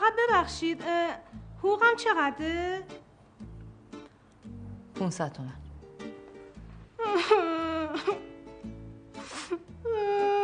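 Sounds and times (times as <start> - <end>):
speech: 0.4 - 3.0, 5.0 - 5.6, 7.1 - 8.8
adult crying and wailing: 7.0 - 8.3, 9.4 - 10.4.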